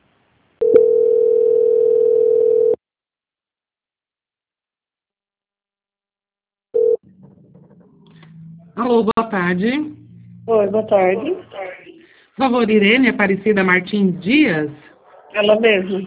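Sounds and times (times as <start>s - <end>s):
telephone line tone during call transfer: 0.6s - 2.8s, 6.8s - 7.0s
faint low noise: 6.8s - 16.0s
speech: 8.9s - 11.4s, 12.4s - 16.0s.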